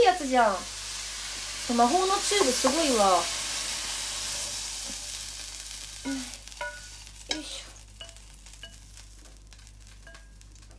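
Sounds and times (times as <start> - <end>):
fried rice sizzling in a pan: 0.0 - 10.7
speech: 0.2 - 0.8, 1.7 - 3.4, 6.0 - 6.4.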